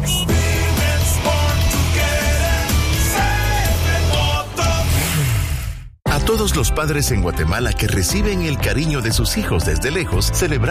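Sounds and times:
CF Moto motorcycle engine revving: 0:00.4 - 0:06.0
speech: 0:06.4 - 0:10.7.

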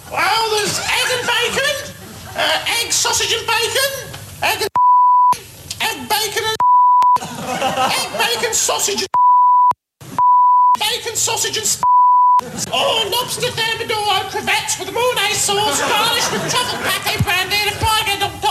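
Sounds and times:
laughter: 0:00.4 - 0:03.2, 0:07.1 - 0:09.1, 0:12.3 - 0:13.8, 0:14.8 - 0:18.4
speech: 0:02.9 - 0:04.7, 0:08.6 - 0:09.1, 0:11.2 - 0:11.8, 0:12.8 - 0:18.4
mid-pitched censor bleeps over speech: 0:04.8 - 0:05.4, 0:06.6 - 0:07.2, 0:09.1 - 0:10.8, 0:11.8 - 0:12.4.

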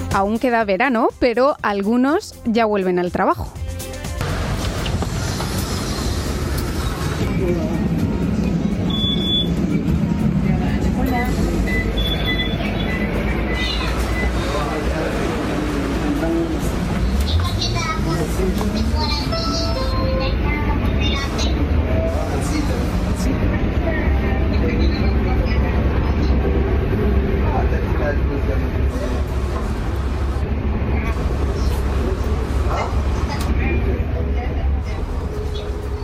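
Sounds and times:
speech: 0:00.1 - 0:03.6, 0:07.4 - 0:07.8
city bus engine rumbling and revving up from inside the bus: 0:03.0 - 0:36.0
voices inside a city bus: 0:07.1 - 0:36.0.

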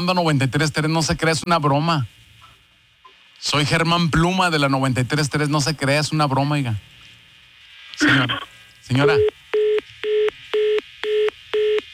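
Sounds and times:
speech: 0:00.0 - 0:02.2, 0:03.4 - 0:07.0, 0:08.0 - 0:09.4
telephone line beeping after a hang-up: 0:09.0 - 0:11.9.

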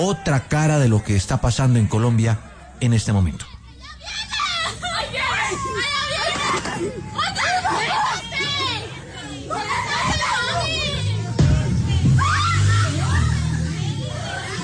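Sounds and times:
speech: 0:00.0 - 0:04.4
people screaming in distress amid crossfire: 0:04.1 - 0:14.6.

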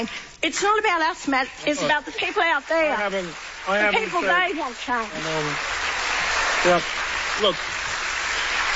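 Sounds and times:
speech: 0:00.0 - 0:05.8, 0:06.6 - 0:07.8
crowd applauding after a speech: 0:01.9 - 0:08.7.

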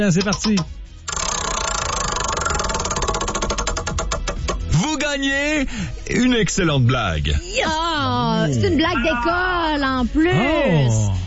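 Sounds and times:
speech: 0:00.0 - 0:00.9, 0:05.2 - 0:11.2
prize wheel spinning in a game with pointer ticking: 0:00.0 - 0:04.7.

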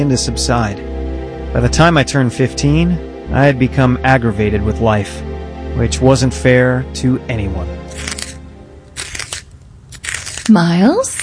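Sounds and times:
speech: 0:00.0 - 0:00.9, 0:01.5 - 0:08.2, 0:10.5 - 0:11.2
pencil being sharpened: 0:07.9 - 0:08.4, 0:09.0 - 0:11.2.

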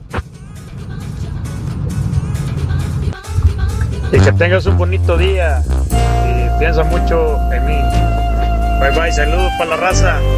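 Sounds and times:
car driving in highway traffic: 0:00.0 - 0:05.9
speech: 0:04.1 - 0:05.9, 0:06.6 - 0:07.9, 0:08.8 - 0:10.3.

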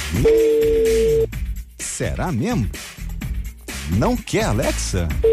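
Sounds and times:
speech: 0:00.2 - 0:00.7, 0:02.0 - 0:02.9, 0:03.9 - 0:05.3
telephone ringback tone: 0:00.2 - 0:01.3.

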